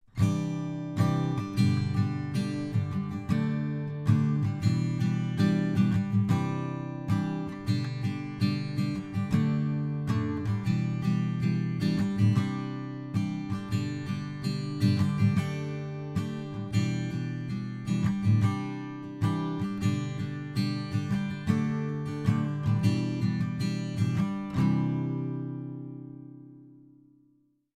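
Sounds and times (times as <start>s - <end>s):
guitar strumming recorded with a U87 microphone: 0.2s - 26.8s.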